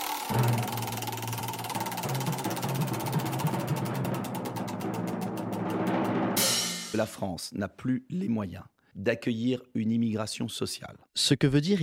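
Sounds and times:
spinning wheel rattling: 0:00.0 - 0:06.9
speech: 0:07.0 - 0:11.8.

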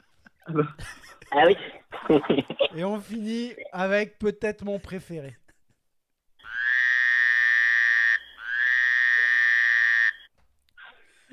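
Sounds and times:
laughter: 0:00.1 - 0:03.7
speech: 0:00.5 - 0:05.4
frog croaking: 0:06.4 - 0:10.3.

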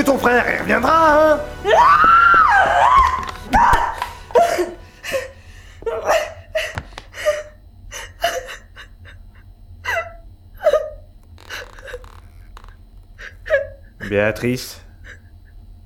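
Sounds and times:
speech: 0:00.0 - 0:02.4, 0:14.1 - 0:14.8
person crying and sobbing: 0:01.6 - 0:12.2, 0:13.2 - 0:14.4, 0:15.0 - 0:15.6.

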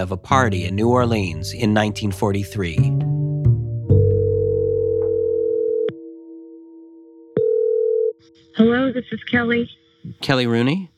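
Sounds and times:
speech: 0:00.0 - 0:03.0, 0:08.7 - 0:10.9
telephone line tone as a call rings out: 0:04.0 - 0:06.2, 0:07.3 - 0:08.5.

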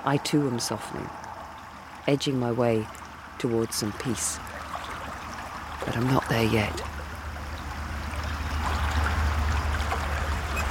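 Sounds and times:
speech: 0:00.0 - 0:01.2, 0:02.0 - 0:04.5, 0:05.8 - 0:06.9
water of Loch Ness lapping against a stony shore: 0:00.4 - 0:10.6.

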